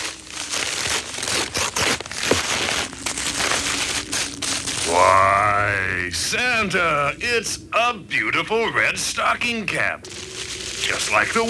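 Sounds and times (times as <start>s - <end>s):
gift wrapping paper crinkling as a present is unwrapped: 0.0s - 5.4s, 10.0s - 11.4s
speech: 6.1s - 10.3s, 10.9s - 11.4s.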